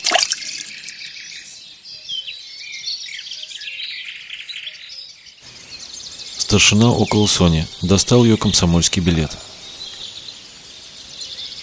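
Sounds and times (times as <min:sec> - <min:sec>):
knife dropping into water: 0:00.0 - 0:00.7
high chirping birds or insects: 0:00.0 - 0:11.6
speech: 0:06.5 - 0:09.5.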